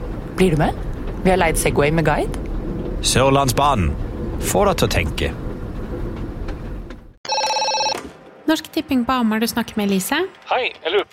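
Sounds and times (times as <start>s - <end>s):
speech: 0.4s - 2.4s, 3.0s - 5.4s, 8.5s - 11.1s
telephone ringing with electronic multi-tone chime: 7.2s - 8.1s.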